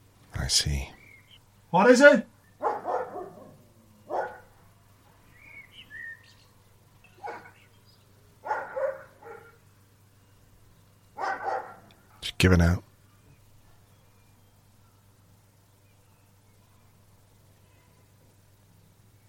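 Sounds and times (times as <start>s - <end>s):
faint bird chirps: 0.4s - 1.7s, 2.3s - 12.2s, 13.0s - 19.2s
speech: 0.5s - 1.0s, 1.7s - 2.3s, 12.4s - 12.9s
dog barking: 2.6s - 4.6s, 7.2s - 7.6s, 8.4s - 9.6s, 11.2s - 11.9s.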